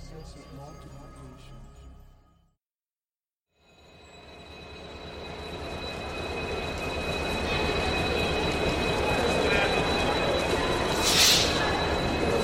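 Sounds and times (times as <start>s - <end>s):
metro train rumbling through the world's deepest train station: 4.4s - 12.4s.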